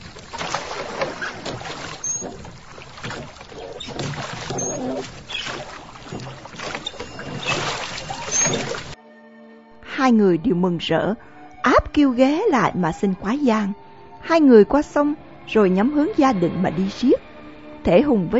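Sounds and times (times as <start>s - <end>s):
small boat travelling down a river: 0.0s - 9.0s
speech: 10.1s - 17.2s, 17.8s - 18.3s.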